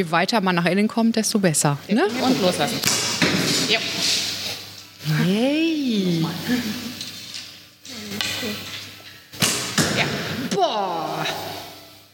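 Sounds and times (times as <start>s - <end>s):
speech: 0.0s - 4.3s, 5.0s - 6.9s
arrow striking a target: 9.4s - 10.4s
excited vocal exclamation: 10.4s - 11.6s.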